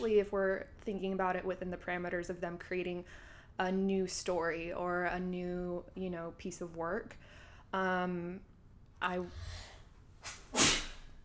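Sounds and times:
speech: 0:00.0 - 0:10.7
quiet hum: 0:00.0 - 0:11.2
person sneezing: 0:10.2 - 0:11.1.

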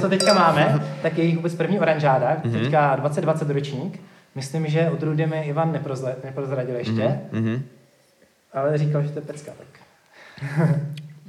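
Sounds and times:
wine glasses clinking in a toast: 0:00.0 - 0:01.2
speech: 0:00.0 - 0:07.8, 0:08.5 - 0:09.8, 0:10.4 - 0:11.0
people laughing: 0:00.3 - 0:01.2, 0:02.4 - 0:02.7.

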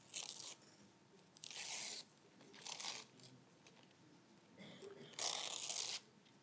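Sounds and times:
wrapping paper being torn off a present: 0:00.0 - 0:00.6, 0:01.4 - 0:03.3, 0:05.2 - 0:06.1.

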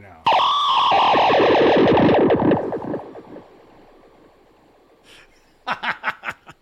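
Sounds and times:
heavily processed distorted electric guitar through effects pedal with delays: 0:00.3 - 0:04.4.

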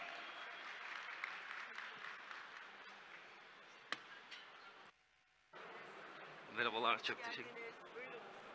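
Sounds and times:
audience applause for a speaker: 0:00.0 - 0:03.4
speech: 0:06.6 - 0:08.4.

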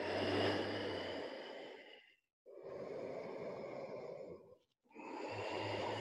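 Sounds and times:
person doing yoga breathing slowly through the throat: 0:00.0 - 0:05.9.

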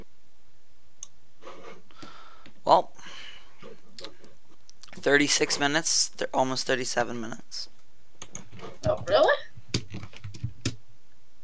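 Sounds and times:
speech: 0:02.7 - 0:02.9, 0:05.0 - 0:07.8, 0:09.1 - 0:09.4
computer keyboard typing: 0:08.2 - 0:10.8.

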